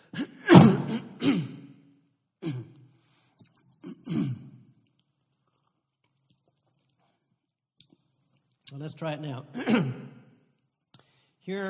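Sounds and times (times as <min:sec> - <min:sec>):
person clearing throat in short rasping bursts: 0:00.0 - 0:01.8, 0:02.4 - 0:02.9, 0:03.8 - 0:04.8, 0:09.6 - 0:10.3
speech: 0:08.8 - 0:10.2, 0:11.4 - 0:11.6.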